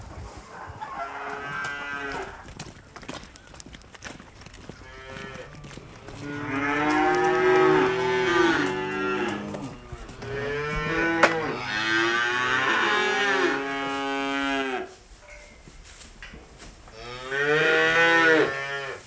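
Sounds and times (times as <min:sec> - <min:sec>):
two-month-old calves mooing: 0:00.8 - 0:02.4, 0:04.8 - 0:14.9, 0:16.9 - 0:19.0.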